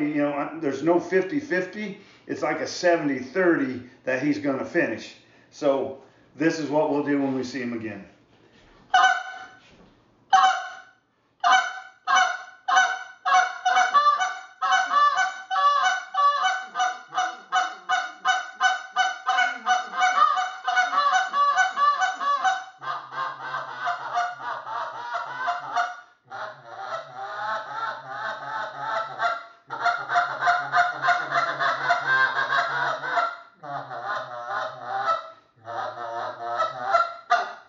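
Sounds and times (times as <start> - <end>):
speech: 0.0 - 8.1
flock of geese honking: 8.9 - 9.6, 10.3 - 37.6.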